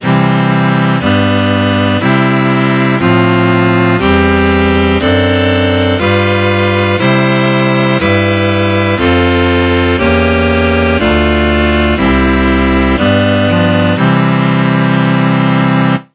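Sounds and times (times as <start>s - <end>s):
Pythagorean scale: 0.0s - 16.1s.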